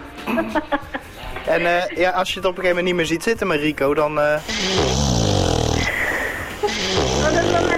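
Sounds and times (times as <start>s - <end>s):
speech: 0.3s - 5.0s
snoring sound effect used as a jingle: 4.5s - 7.7s.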